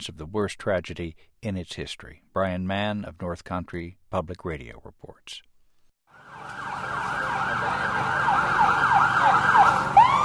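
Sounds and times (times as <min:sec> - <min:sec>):
speech: 0:00.0 - 0:05.5
emergency vehicle sirens wailing in a neighborhood near downtown: 0:06.1 - 0:10.2.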